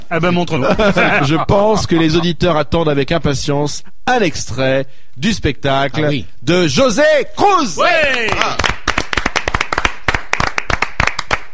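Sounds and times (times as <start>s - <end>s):
speech: 0.1s - 8.8s
laughter: 0.4s - 2.8s
hand clapping in a studio: 8.1s - 11.5s.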